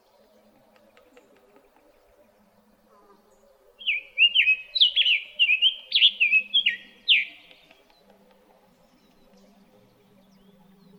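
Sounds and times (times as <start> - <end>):
summer tanager whistled song in Arizona: 3.8 - 7.4.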